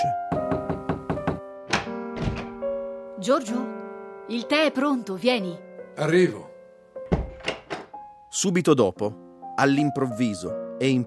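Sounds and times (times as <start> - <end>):
knuckles knocking on a study door in a house in Fiesole: 0.1 - 2.6, 7.1 - 8.0
speech: 3.2 - 6.5, 8.4 - 11.0.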